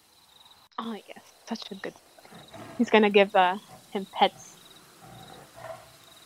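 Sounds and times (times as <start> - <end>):
speech: 0.8 - 4.6
tiger purring with a deep low rumble: 1.8 - 6.2.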